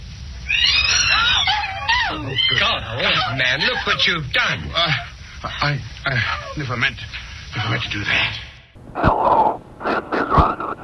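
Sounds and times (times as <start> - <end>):
faint low hum: 0.0 - 10.8
startled cat yowling: 0.3 - 10.8
laughter: 1.0 - 10.8
speech: 2.1 - 9.7.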